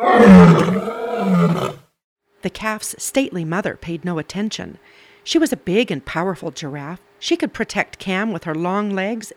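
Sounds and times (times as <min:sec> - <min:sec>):
lioness roaring: 0:00.0 - 0:01.9
speech: 0:00.1 - 0:00.8, 0:02.4 - 0:09.3.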